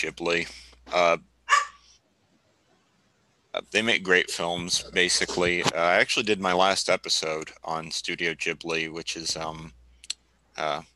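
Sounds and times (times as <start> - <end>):
speech: 0.0 - 1.3, 3.6 - 9.8, 10.6 - 10.9
single sharp dog bark: 1.5 - 1.8.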